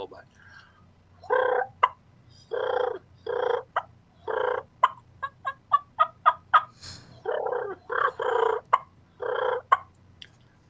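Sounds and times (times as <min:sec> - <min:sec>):
turkey clucks made on a diaphragm call: 0:01.2 - 0:09.9
soft rolling turkey purrs made on a diaphragm call: 0:02.5 - 0:04.7, 0:06.6 - 0:09.8.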